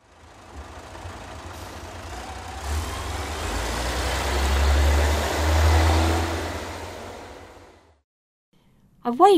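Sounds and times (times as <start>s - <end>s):
heavy bus engine rumbling: 0.0s - 8.0s.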